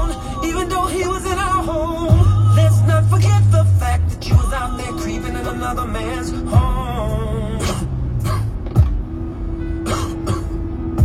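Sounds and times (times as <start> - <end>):
steady low tonal background: 0.0 - 11.0
man coughing: 8.2 - 8.6, 9.8 - 10.6.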